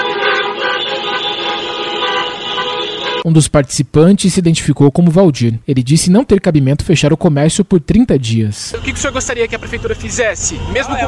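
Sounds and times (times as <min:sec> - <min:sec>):
horns of hundreds of cars and pickup trucks honking in a drivers' protest: 0:00.0 - 0:03.3, 0:08.8 - 0:11.0
speech: 0:03.3 - 0:11.0.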